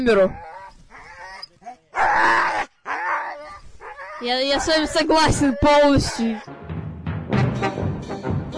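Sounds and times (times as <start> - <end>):
speech: 0.0 - 0.5, 4.2 - 6.6
sled dog barking and yowling: 0.1 - 6.5.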